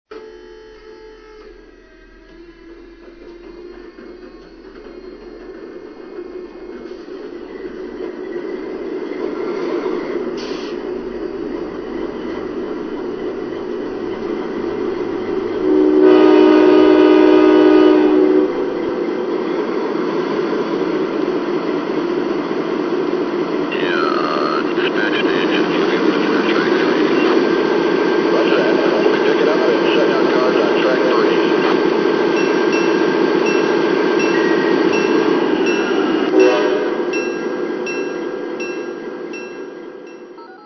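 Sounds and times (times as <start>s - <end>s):
GE DASH8 locomotive: 0.1s - 40.6s.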